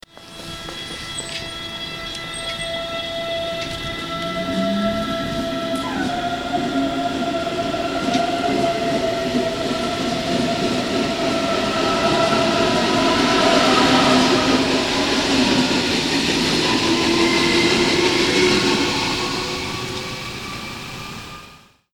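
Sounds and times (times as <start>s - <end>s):
S-Bahn commuter train: 0.0s - 21.9s.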